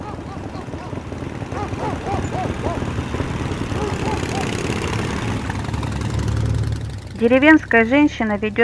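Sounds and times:
motorcycle engine droning on a village street on a foggy early morning: 0:00.0 - 0:08.6
speech: 0:07.2 - 0:08.6.

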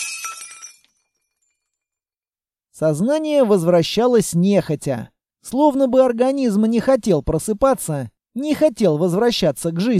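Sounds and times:
china cup falling and shattering: 0:00.0 - 0:01.2
speech: 0:02.8 - 0:09.9.

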